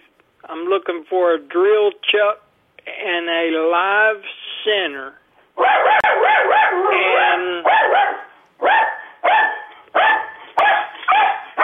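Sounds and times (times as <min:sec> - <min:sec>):
speech: 0:00.5 - 0:06.0
dog barking: 0:05.6 - 0:11.6.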